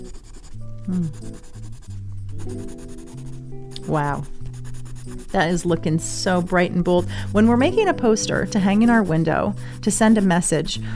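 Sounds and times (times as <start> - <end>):
colored pencil scratching across paper in coloring strokes: 0.0 - 10.8
soft low music: 0.0 - 10.9
speech: 0.9 - 1.6, 3.9 - 4.4, 5.3 - 10.9.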